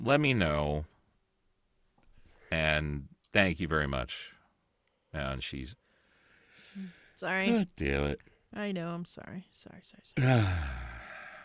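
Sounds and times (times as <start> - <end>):
speech: 0.0 - 0.9, 2.5 - 4.4, 5.1 - 5.8, 6.8 - 11.0
person yawning: 10.2 - 11.4.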